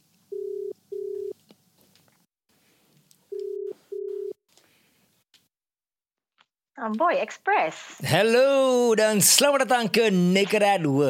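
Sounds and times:
telephone ringback tone on a long-distance call to Australia: 0.3s - 1.4s, 3.3s - 4.4s
speech: 6.8s - 11.0s.

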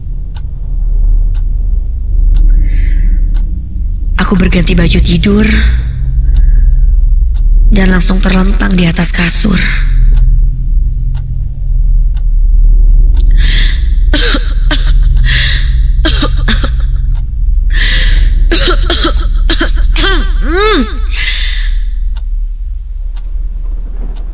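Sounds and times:
steady low rumble: 0.0s - 24.3s
speech: 4.3s - 5.9s, 7.8s - 10.0s
person coughing harshly: 18.5s - 21.3s.

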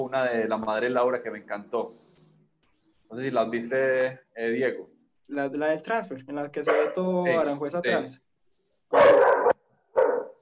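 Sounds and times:
speech: 0.0s - 2.2s, 3.1s - 8.2s, 8.9s - 9.3s
dog barking: 6.6s - 7.1s, 8.9s - 10.4s.

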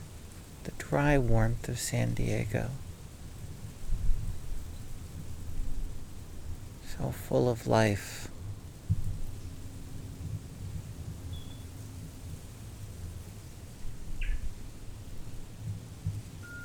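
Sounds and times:
steady low outdoor rumble: 0.0s - 16.6s
speech: 0.8s - 2.8s, 7.0s - 8.3s
faint bird chirps outdoors in warm dry San Diego: 11.3s - 11.7s, 14.2s - 14.5s, 16.4s - 16.6s.

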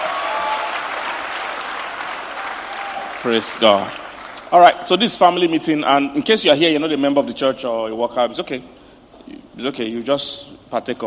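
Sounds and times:
crowd applauding: 0.0s - 4.5s
speech: 3.2s - 8.8s, 9.6s - 11.0s.

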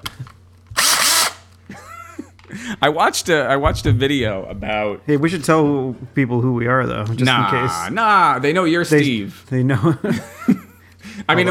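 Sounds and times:
power drill whirring: 0.7s - 1.6s
laughter: 1.6s - 2.8s, 9.7s - 11.4s
speech: 2.5s - 10.4s, 11.3s - 11.4s.

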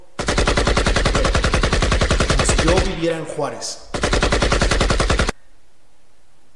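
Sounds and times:
automatic gunfire heard from a home in Juárez: 0.2s - 5.4s
speech: 3.0s - 3.9s.

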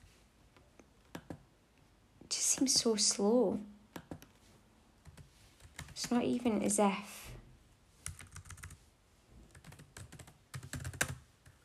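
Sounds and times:
fast typing on a computer keyboard: 1.1s - 1.4s, 4.0s - 4.3s, 5.0s - 6.2s, 8.0s - 8.8s, 9.5s - 11.6s
speech: 2.6s - 3.7s, 6.1s - 7.2s.

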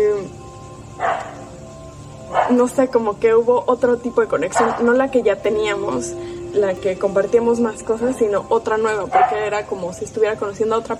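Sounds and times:
low hum: 0.0s - 10.9s
dog barking: 1.0s - 1.4s, 2.3s - 2.7s, 4.6s - 4.9s, 9.1s - 9.5s
speech: 2.5s - 10.9s.

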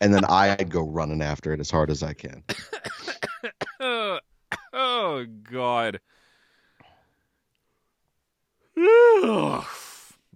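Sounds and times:
speech: 0.0s - 3.0s, 4.8s - 6.2s, 8.8s - 9.8s
person yawning into a microphone: 8.8s - 10.2s.

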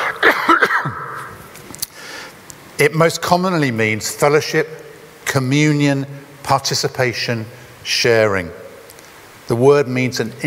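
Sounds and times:
person coughing raspy bursts: 0.0s - 1.3s
speech: 2.8s - 8.6s, 9.5s - 10.4s.

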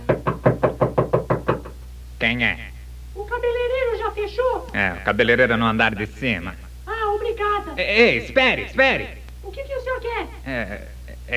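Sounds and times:
light knocking on a door: 0.0s - 1.9s
speech: 2.2s - 6.6s, 7.4s - 9.2s, 10.5s - 11.3s.

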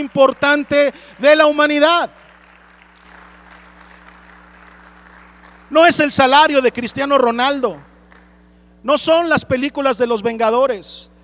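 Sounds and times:
speech: 0.0s - 2.2s, 5.7s - 7.9s, 8.8s - 11.1s
audience applauding at a night church service celebrating the birth of Jesus: 0.0s - 8.4s.

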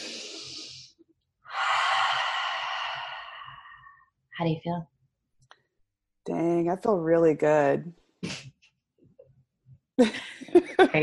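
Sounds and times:
deep breath in through the nose: 1.5s - 4.0s
speech: 4.4s - 4.9s, 6.3s - 8.0s, 10.0s - 10.2s, 10.8s - 11.0s.

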